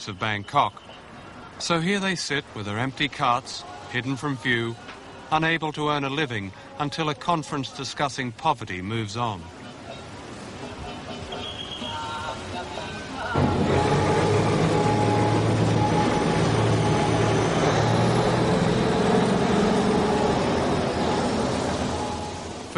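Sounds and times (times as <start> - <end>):
speech: 0.0 - 1.0, 1.6 - 9.6
train rumbling along railway tracks in Bangkok: 10.3 - 22.7.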